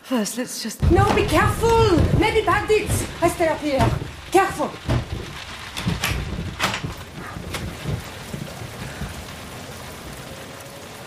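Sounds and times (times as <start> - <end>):
speech: 0.1 - 5.0
branch banging against a door: 0.8 - 9.0
rain: 0.8 - 11.0
stormy wind: 0.8 - 11.0.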